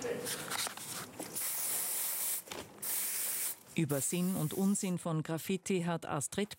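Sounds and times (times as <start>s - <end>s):
speech: 0.0s - 0.7s, 3.8s - 6.5s
aerosol spray can hissing: 1.4s - 4.6s.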